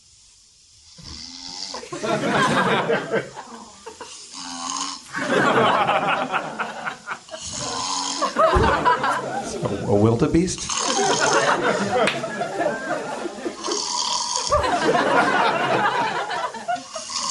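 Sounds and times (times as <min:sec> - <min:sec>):
man snoring loudly with rattling inhales: 0:00.8 - 0:02.0, 0:03.6 - 0:05.2, 0:07.3 - 0:08.4, 0:10.6 - 0:12.0, 0:13.5 - 0:15.0, 0:16.8 - 0:17.2
laughter: 0:01.8 - 0:04.2, 0:05.1 - 0:10.1, 0:10.8 - 0:17.2
speech: 0:01.9 - 0:03.4, 0:08.4 - 0:13.0.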